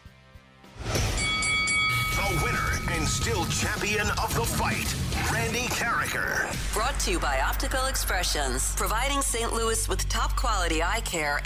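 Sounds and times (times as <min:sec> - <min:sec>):
bell ringing: 0:01.0 - 0:04.4
speech: 0:02.9 - 0:11.4.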